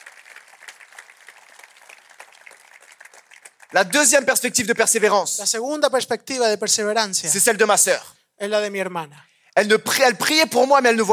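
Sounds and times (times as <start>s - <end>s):
audience applauding at a bilingual church gathering: 0.0s - 4.2s
speech: 3.7s - 11.1s.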